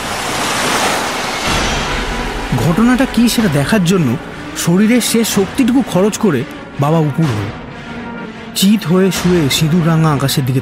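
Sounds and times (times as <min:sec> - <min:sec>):
huge waves crashing on a pond: 0:00.0 - 0:06.0
speech: 0:02.7 - 0:07.6, 0:08.6 - 0:10.6.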